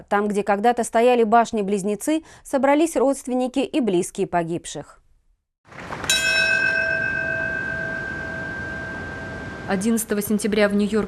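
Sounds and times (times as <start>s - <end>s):
speech: 0.0s - 5.0s, 5.7s - 6.0s, 9.7s - 11.0s
large memorial bell tolling at the former World Trade Center site in New York: 6.0s - 10.8s.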